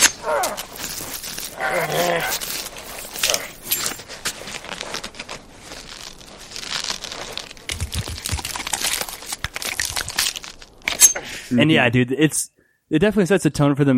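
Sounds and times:
throat-slit sound effect of crunching bone and tearing flesh: 0:00.0 - 0:10.8
speech: 0:11.5 - 0:13.9.

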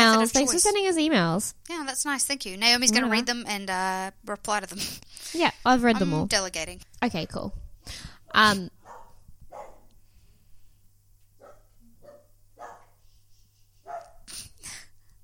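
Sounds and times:
speech: 0:00.2 - 0:08.8
guard dog barking in an apartment building: 0:08.8 - 0:09.9, 0:11.4 - 0:13.0, 0:13.8 - 0:14.3.

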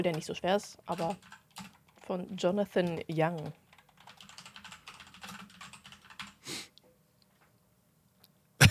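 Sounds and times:
speech: 0:00.0 - 0:03.6
rapid keystrokes on a computer keyboard as a name is typed: 0:00.0 - 0:06.4.

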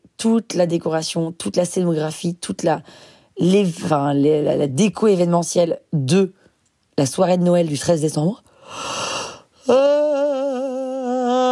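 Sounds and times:
speech: 0:00.2 - 0:06.4, 0:07.0 - 0:09.0, 0:09.6 - 0:09.9
person's long voiced yawn: 0:08.8 - 0:11.5.

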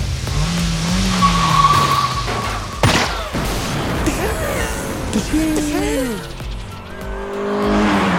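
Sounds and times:
car engines roaring in a movie car chase: 0:00.0 - 0:08.1
tires skidding and squealing in a movie car chase: 0:00.0 - 0:08.1
crash or bang: 0:01.7 - 0:04.2
man shooting at a car: 0:02.8 - 0:04.2
voices beneath the action: 0:04.0 - 0:06.6.

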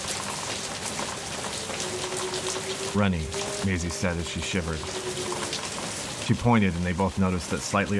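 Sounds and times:
heavy rain dripping from the roof of a house's front landing: 0:00.0 - 0:07.9
speech: 0:03.0 - 0:05.1, 0:06.3 - 0:07.9.

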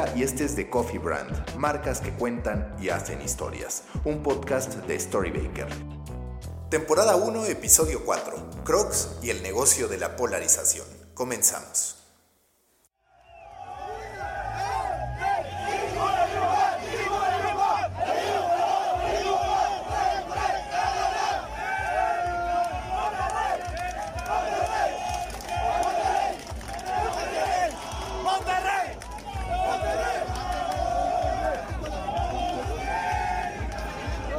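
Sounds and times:
speech: 0:00.0 - 0:06.0, 0:06.7 - 0:12.0
football fans chanting in a stadium: 0:13.1 - 0:34.3.

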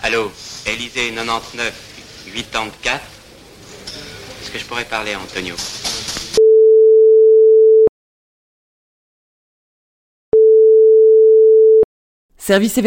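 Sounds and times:
speech: 0:00.0 - 0:03.1, 0:04.4 - 0:05.8, 0:12.5 - 0:12.8
telephone line tone beeps: 0:06.4 - 0:07.9, 0:10.4 - 0:11.8.

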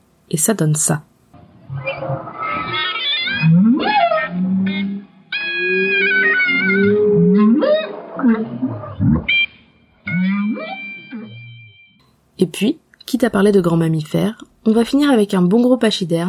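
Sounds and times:
speech: 0:00.3 - 0:01.1, 0:12.4 - 0:16.2
humpback whale song recorded underwater with a hydrophone off the coast of Maui: 0:01.7 - 0:12.0
sustained clarinet tones played through an amplifier and underwater speaker: 0:03.4 - 0:11.8.

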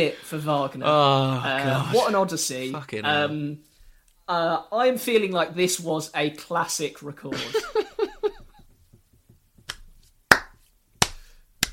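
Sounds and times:
speech: 0:00.0 - 0:03.7, 0:04.3 - 0:07.9
laughter: 0:07.3 - 0:08.6
person clapping hands: 0:09.6 - 0:11.7.

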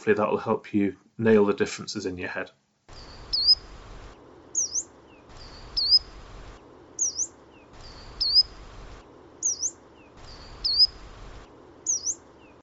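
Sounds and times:
speech: 0:00.0 - 0:03.1
faint hiss: 0:00.0 - 0:12.6
coal tit calls: 0:02.9 - 0:12.6.

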